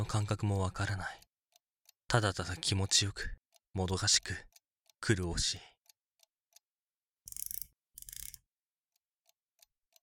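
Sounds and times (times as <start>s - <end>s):
speech: 0.0s - 1.2s, 2.1s - 5.7s
clock ticking: 0.0s - 6.7s, 7.3s - 10.0s.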